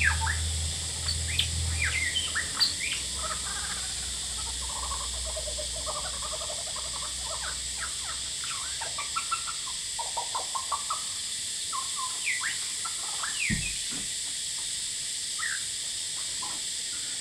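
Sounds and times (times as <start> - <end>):
male lyrebird singing: 0.0 - 13.9, 15.4 - 15.7
loud cicadas calling: 0.0 - 17.1.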